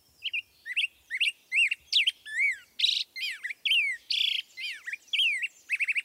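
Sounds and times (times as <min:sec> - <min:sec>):
black-headed grosbeak singing: 0:00.2 - 0:06.0.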